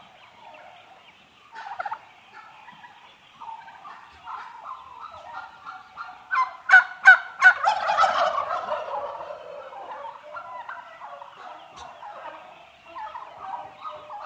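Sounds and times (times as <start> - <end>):
eight month old domestic turkey hens calling indoors: 0.0 - 14.2.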